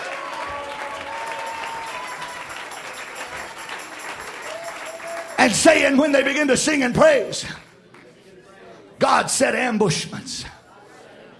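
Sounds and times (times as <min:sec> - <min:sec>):
audience clapping hands: 0:00.0 - 0:06.6
speech: 0:05.4 - 0:07.6, 0:09.1 - 0:10.6
faint murmur of voices: 0:07.6 - 0:11.3.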